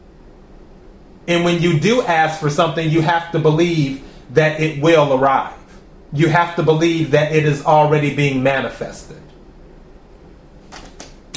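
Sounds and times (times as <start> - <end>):
speech: 1.3 - 9.3
tarot cards being shuffled: 10.6 - 11.3.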